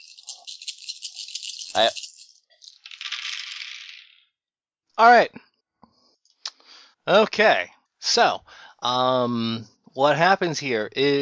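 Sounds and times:
dice rattling: 0.0 - 4.4
speech: 1.8 - 2.0, 5.0 - 5.5, 7.1 - 11.2.

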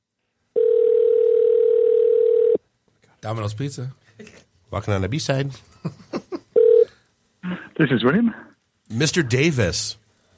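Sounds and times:
telephone ringing tone on an international long-distance call: 0.6 - 2.6, 6.6 - 6.9
speech: 3.2 - 6.1, 7.8 - 10.0.

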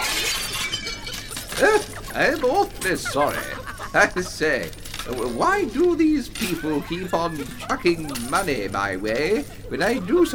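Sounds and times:
Roman cameo glass vase shattering: 0.0 - 9.3
tinkling glass shards rattling: 0.0 - 9.9
laughter: 0.3 - 10.3
speech: 1.6 - 10.3.

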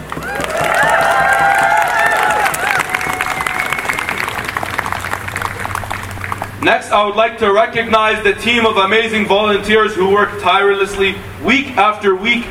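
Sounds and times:
large crowd clapping and cheering at rally: 0.0 - 6.7
high whoops and whistles from rally crowd: 0.2 - 4.5
speech: 6.6 - 12.4.

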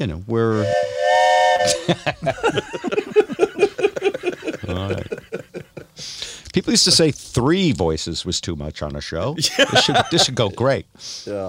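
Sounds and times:
speech: 0.0 - 1.0, 1.6 - 2.8, 6.6 - 11.4
whistle of an oncoming train: 0.5 - 2.0
laughter: 1.6 - 6.0, 9.4 - 10.6.

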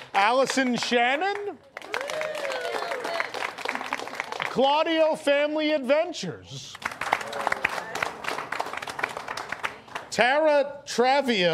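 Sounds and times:
audience clapping: 0.0 - 5.1, 6.6 - 10.2
speech: 0.2 - 2.0, 4.6 - 6.8, 10.2 - 11.5
person cheering or calling out over the clapping: 1.9 - 3.3.

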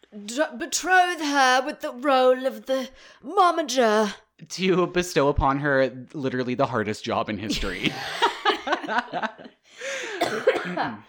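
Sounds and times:
speech: 0.1 - 8.3, 8.9 - 11.0
laughter: 7.5 - 10.0
sick person coughing: 9.9 - 11.0.

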